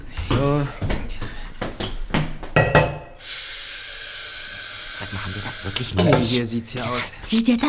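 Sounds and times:
speech: 0:00.4 - 0:00.9, 0:06.0 - 0:07.6
dishes and mugs clinking during washing up: 0:02.6 - 0:03.2, 0:06.0 - 0:06.4
running water hiss: 0:03.1 - 0:06.2.

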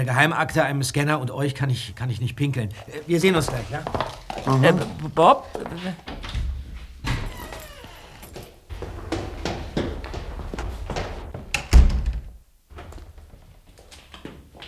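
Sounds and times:
speech: 0:00.0 - 0:06.1
footsteps behind a closed guest toilet door: 0:02.7 - 0:14.6.

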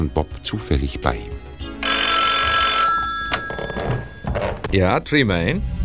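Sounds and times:
speech: 0:00.0 - 0:01.5, 0:04.7 - 0:05.7
telephone ringing with a bright electric bell: 0:01.8 - 0:04.6.

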